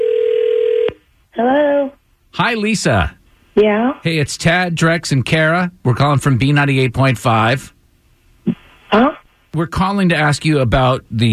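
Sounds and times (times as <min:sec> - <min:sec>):
telephone dial tone: 0:00.0 - 0:01.0
speech: 0:01.4 - 0:07.8, 0:08.9 - 0:11.3
voice speaking on the phone line: 0:01.4 - 0:07.8, 0:08.5 - 0:11.3.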